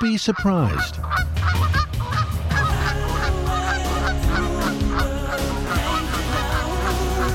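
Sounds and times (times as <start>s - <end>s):
flock of Canada geese honking: 0.0s - 7.3s
speech: 0.1s - 1.6s.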